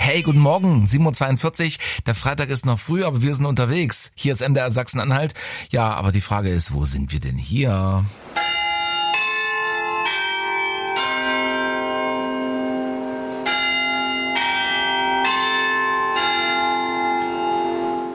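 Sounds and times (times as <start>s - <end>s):
speech: 0.1s - 8.5s
clock chime rung by tower bells on a market square: 8.4s - 18.1s.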